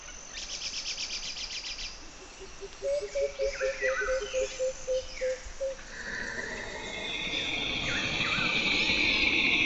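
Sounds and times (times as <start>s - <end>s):
dense jungle ambience: 0.0s - 9.6s
eerie pulsing screech of siren vines in jungle: 5.6s - 9.6s.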